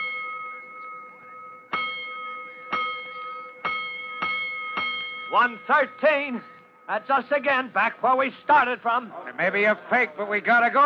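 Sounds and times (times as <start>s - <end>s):
fire station alarm gong ringing at night: 0.0s - 7.4s
speech: 5.3s - 10.8s.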